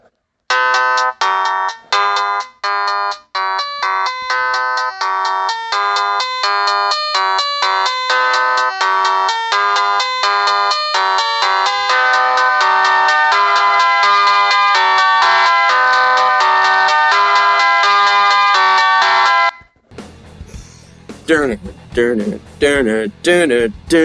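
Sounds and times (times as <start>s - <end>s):
Motorola V810 mobile phone electronic synth ringtone: 0.5s - 19.7s
people talking: 21.3s - 24.0s.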